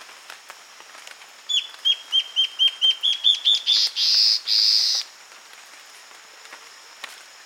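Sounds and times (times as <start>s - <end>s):
quiet steady high-pitched background hum: 0.0s - 7.4s
Guianan warbling antbird song of slurred whistles: 1.5s - 5.1s.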